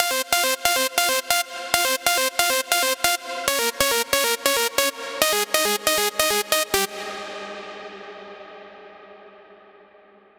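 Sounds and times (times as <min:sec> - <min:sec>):
psytrance synth pluck melody: 0:00.0 - 0:07.9.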